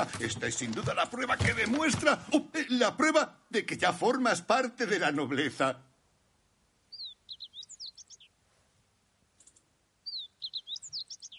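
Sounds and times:
speech: 0.0 - 5.9
small bird chirping: 6.8 - 8.4, 9.4 - 11.3.

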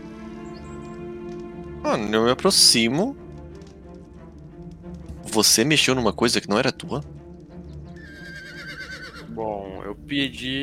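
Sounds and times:
speech: 1.8 - 3.2, 5.4 - 7.2, 10.0 - 10.6
horse neighing: 8.0 - 9.4.

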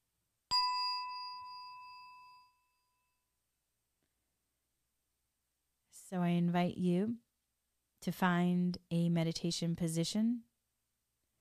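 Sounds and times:
meditation bell ringing: 0.5 - 3.1
speech: 6.0 - 7.2, 8.0 - 10.5.

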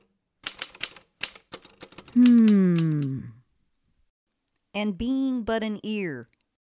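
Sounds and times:
typewriter keystrokes as poems are transcribed: 0.4 - 3.0
speech: 2.2 - 2.8, 4.8 - 6.4.

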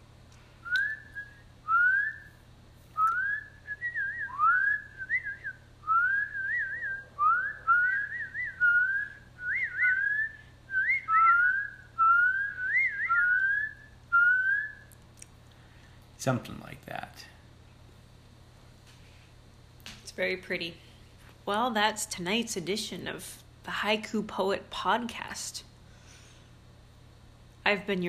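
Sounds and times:
low hum: 0.0 - 28.0
person whistling short rising chirps imitating a spring peeper frog: 0.6 - 2.3, 3.0 - 14.9
speech: 16.2 - 17.4, 20.2 - 20.8, 21.5 - 25.7, 27.7 - 28.0.

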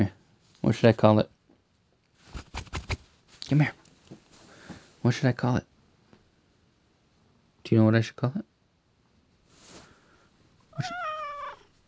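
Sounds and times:
speech: 0.0 - 1.3, 3.5 - 3.8, 5.0 - 5.7, 7.6 - 8.5, 10.8 - 11.0
soft rustle: 2.0 - 5.1, 9.4 - 11.8
cat meowing: 10.7 - 11.7.

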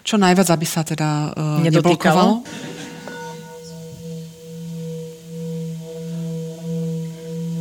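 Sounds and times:
speech: 0.1 - 2.7
singing bowl for sound healing being rubbed: 1.6 - 7.5.

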